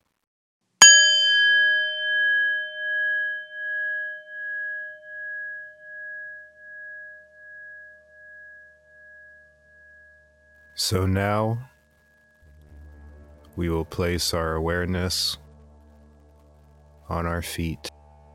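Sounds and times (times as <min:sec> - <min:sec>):
meditation bell struck once with clear metallic tone: 0:00.8 - 0:12.8
speech: 0:10.8 - 0:11.7, 0:13.6 - 0:15.4, 0:17.1 - 0:18.0.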